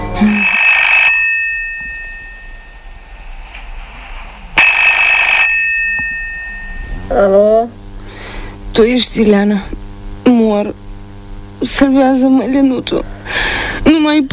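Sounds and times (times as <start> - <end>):
speech: 0.2 - 0.5, 8.7 - 9.8, 11.6 - 14.3
telephone line ringing during a call: 0.2 - 3.1, 4.6 - 7.3.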